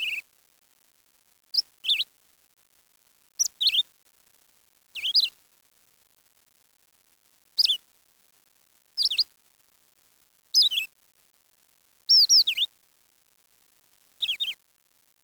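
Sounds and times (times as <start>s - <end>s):
bird twittering chirps: 0.0s - 0.2s, 1.6s - 2.0s, 3.4s - 3.8s, 5.0s - 5.3s, 7.6s - 7.8s, 9.0s - 9.2s, 10.6s - 10.9s, 12.1s - 12.7s, 14.2s - 14.6s.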